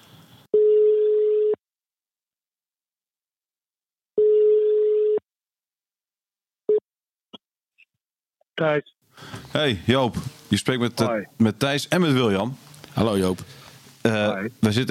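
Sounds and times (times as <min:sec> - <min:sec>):
telephone ringing tone on an outgoing call: 0:00.6 - 0:01.6, 0:04.2 - 0:05.2
speech: 0:08.6 - 0:14.8.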